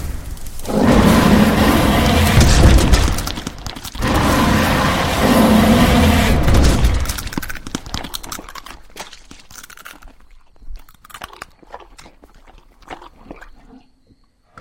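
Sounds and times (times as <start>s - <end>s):
horror movie sound effect: 0.6s - 7.4s.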